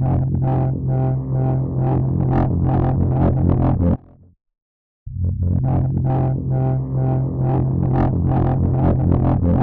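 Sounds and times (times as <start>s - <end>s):
roaring synth pad effect: 0.1s - 3.8s, 5.6s - 9.4s.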